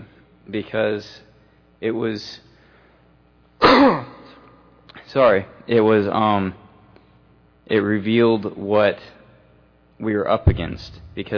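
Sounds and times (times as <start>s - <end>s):
speech: 0.5s - 2.5s, 3.8s - 4.1s, 5.1s - 6.6s, 7.7s - 9.2s, 10.0s - 11.3s
person clearing throat: 3.6s - 4.4s.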